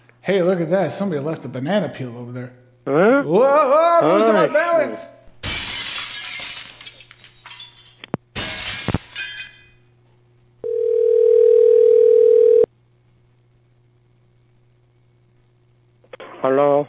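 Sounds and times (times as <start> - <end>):
speech: 0.2 - 5.2
glass shattering: 5.4 - 9.8
tinkling glass shards and debris: 5.4 - 9.8
electronic telephone dial tone: 10.6 - 12.7.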